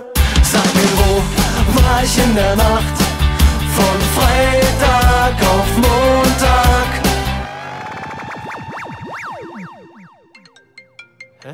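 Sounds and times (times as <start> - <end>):
speech: 0.4 - 3.0, 3.8 - 7.0
mobile phone ringtone with electronic synth melody for an incoming call: 6.1 - 11.5.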